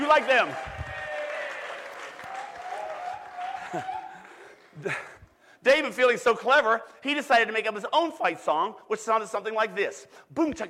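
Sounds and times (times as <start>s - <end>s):
army crowd applause and cheering hailing its heroes: 0.0s - 4.9s
speech: 0.1s - 0.7s, 3.7s - 4.0s, 4.8s - 10.6s.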